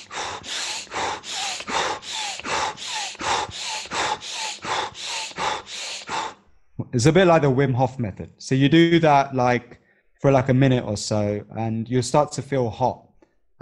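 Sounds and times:
rapid forceful nasal breathing in Bhastrika pranayama: 0:00.0 - 0:06.6
speech: 0:06.9 - 0:13.6.

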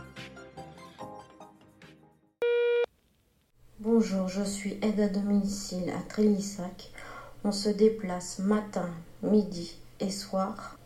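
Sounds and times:
electronic beep: 0:02.4 - 0:02.9
speech: 0:03.9 - 0:10.8.

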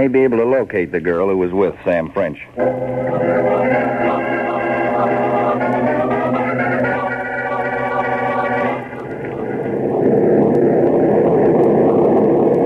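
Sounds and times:
speech: 0:00.0 - 0:04.2
airplane engine droning in flight with a tailwind: 0:02.5 - 0:12.6.

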